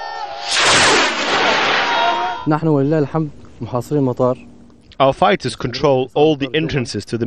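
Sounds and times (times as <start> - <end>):
people shouting: 0.0 - 0.6, 1.4 - 2.5
homemade short-range rocket being fired: 0.3 - 2.5
speech: 2.4 - 7.2.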